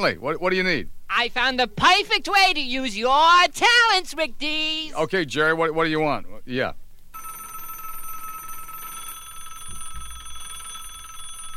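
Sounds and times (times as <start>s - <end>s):
speech: 0.0s - 6.8s
old-fashioned telephone bell ringing: 7.1s - 11.5s.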